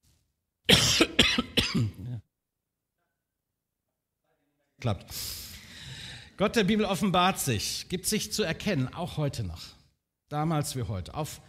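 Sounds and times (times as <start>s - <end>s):
harsh coughs tapering into a throaty rasp: 0.7s - 2.2s
speech: 4.8s - 5.4s, 6.4s - 11.4s.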